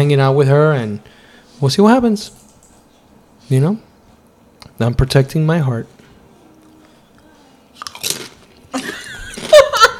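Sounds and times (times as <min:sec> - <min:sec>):
speech: 0:00.0 - 0:02.4, 0:03.5 - 0:03.9, 0:04.8 - 0:06.0
crisp food being bitten and chewed: 0:06.6 - 0:09.6
laughter: 0:08.8 - 0:09.9.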